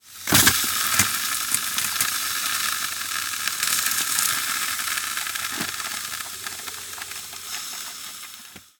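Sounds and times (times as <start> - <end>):
ice sizzling: 0.0 - 8.7.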